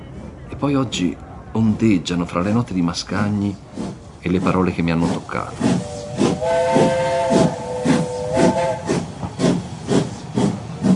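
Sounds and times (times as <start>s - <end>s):
speech: 0.6s - 7.6s
steam locomotive chuffing as the train pulls out from under the station canopy: 3.5s - 10.9s
long harmonic steam locomotive whistle blowing: 5.6s - 9.0s.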